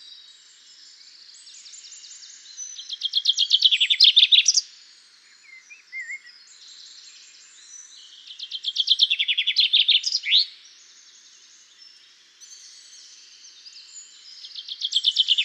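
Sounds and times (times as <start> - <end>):
common chaffinch singing descending phrases of bright chips: 1.6 - 4.7, 7.8 - 10.6, 11.8 - 15.4.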